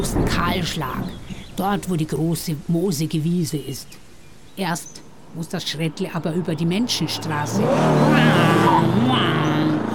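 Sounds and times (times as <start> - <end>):
speech: 0.0 - 4.0, 4.6 - 9.5
motorcycle driving past: 7.1 - 9.9.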